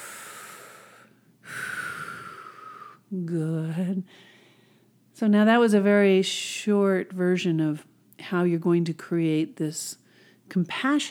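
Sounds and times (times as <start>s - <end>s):
deep breath at the close of a guided relaxation exercise: 0.0s - 3.0s, 4.1s - 5.0s
speech: 3.1s - 4.3s, 5.2s - 11.0s.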